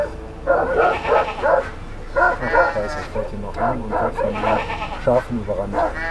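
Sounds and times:
guard dog barking: 0:00.0 - 0:03.0, 0:03.6 - 0:04.6, 0:05.7 - 0:06.0
flock of alarmed sheep bleating: 0:00.7 - 0:01.7, 0:02.3 - 0:03.2, 0:04.2 - 0:05.2.

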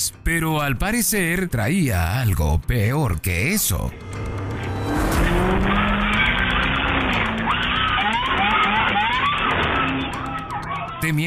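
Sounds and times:
speech: 0:00.0 - 0:04.4, 0:11.1 - 0:11.2
car engine roaring as driver floors the pedal: 0:03.7 - 0:11.0
car tires skidding and squealing: 0:04.2 - 0:11.0.

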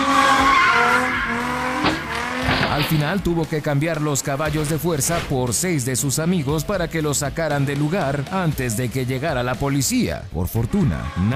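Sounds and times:
tires of a speeding Mustang squealing in a skid: 0:00.0 - 0:03.1
Mustang car crashing: 0:00.0 - 0:05.7
speech: 0:02.8 - 0:11.3.

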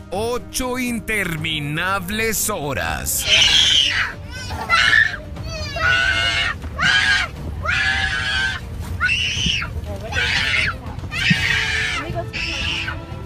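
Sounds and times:
speech: 0:00.1 - 0:05.0
little boy crying and screaming on an airplane: 0:03.2 - 0:13.0.

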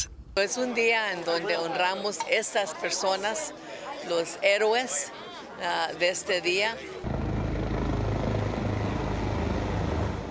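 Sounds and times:
speech: 0:00.4 - 0:07.1
helicopters flying overhead: 0:07.0 - 0:10.2.

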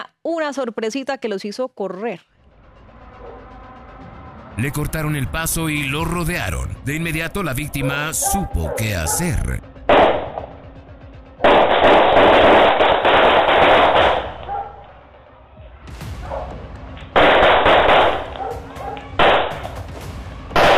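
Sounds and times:
speech: 0:00.0 - 0:02.4, 0:04.6 - 0:10.2
rapid gunfire during an attempted car robbery: 0:11.4 - 0:14.5, 0:17.2 - 0:19.8, 0:20.6 - 0:20.7.

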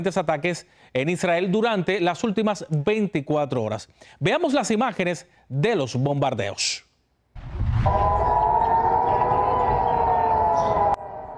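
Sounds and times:
speech: 0:00.0 - 0:08.4
low rumbling background: 0:07.4 - 0:11.3
air raid siren wailing: 0:07.7 - 0:11.3.

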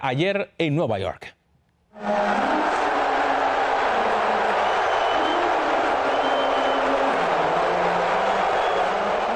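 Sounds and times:
speech: 0:00.0 - 0:01.4
large arena crowd booing during national anthem: 0:02.0 - 0:09.3.

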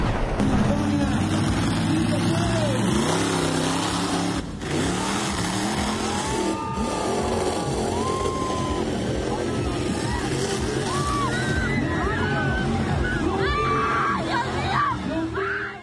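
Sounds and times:
monster truck engine roar at an exhibition in Colombia: 0:00.0 - 0:15.8
crowd shouting and screaming at an exhibition in Colombia: 0:04.7 - 0:15.8.

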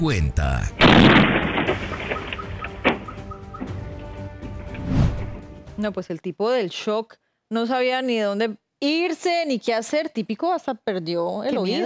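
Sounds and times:
speech: 0:00.0 - 0:02.3, 0:05.8 - 0:11.8
gas explosion blast: 0:00.8 - 0:02.1
debris-like clatter: 0:00.8 - 0:03.1
sharp secondary crack of gas explosion: 0:00.8 - 0:03.1.

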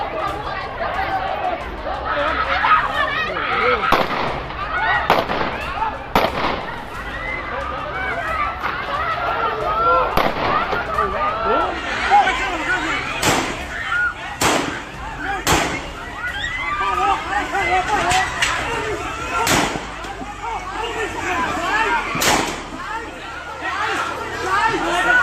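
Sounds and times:
outdoor crowd shouting and chatter: 0:00.0 - 0:25.2
gunshots fired during a street fight: 0:03.9 - 0:04.5, 0:05.1 - 0:05.6, 0:06.2 - 0:06.8, 0:10.2 - 0:10.8, 0:13.2 - 0:13.7, 0:14.4 - 0:14.8, 0:15.4 - 0:15.9, 0:19.4 - 0:19.9, 0:22.2 - 0:22.7.

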